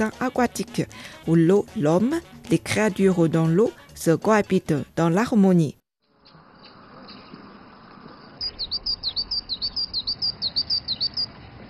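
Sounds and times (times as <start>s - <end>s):
speech: 0.0s - 5.8s
bird singing high, bright chirps: 8.4s - 11.4s.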